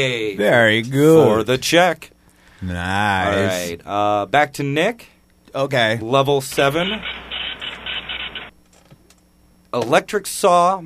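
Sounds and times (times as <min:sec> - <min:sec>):
speech: 0:00.0 - 0:07.3, 0:09.7 - 0:10.8
dot matrix printer printing: 0:06.6 - 0:08.5.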